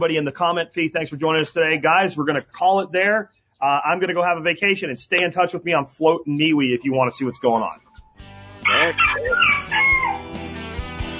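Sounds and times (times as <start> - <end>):
speech: 0.0 - 7.8, 8.7 - 9.6
rooster crowing: 8.6 - 10.4.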